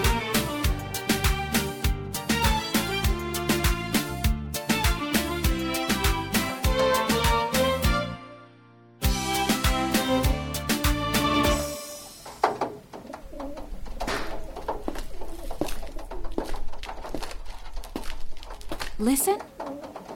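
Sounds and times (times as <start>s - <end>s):
brief burst of tonal music: 0.0s - 12.6s
doves cooing at a dovecote in Mardavich, Isfahan, Iran: 11.9s - 17.9s, 18.5s - 20.1s
speech: 19.0s - 19.5s.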